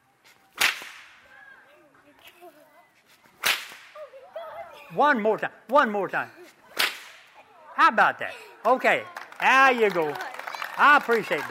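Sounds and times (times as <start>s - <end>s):
whip cracking: 0.5s - 1.2s, 3.4s - 4.0s, 6.7s - 7.4s
speech: 4.9s - 6.4s, 7.8s - 11.5s.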